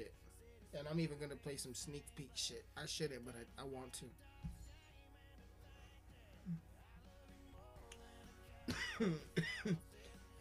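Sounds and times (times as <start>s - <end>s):
speech: 0.0s - 4.6s, 6.4s - 6.7s, 9.0s - 10.1s
person coughing into a microphone: 8.7s - 9.9s.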